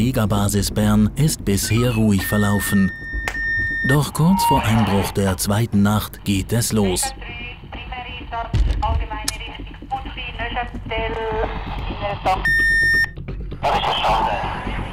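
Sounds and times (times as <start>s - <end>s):
speech: 0.0s - 3.1s, 3.8s - 7.2s, 10.9s - 12.6s, 13.6s - 14.7s
rhythmic clattering: 0.0s - 14.9s
electronic alarm at an air rescue base in Bern: 1.7s - 5.2s, 12.4s - 13.2s.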